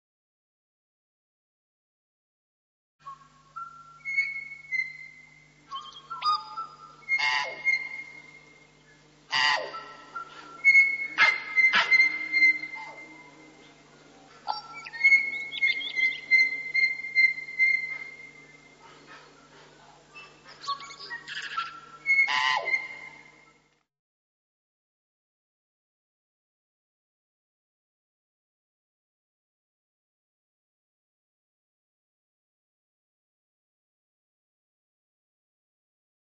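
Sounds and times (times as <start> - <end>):
tui calling: 3.1 - 13.8, 14.4 - 23.6.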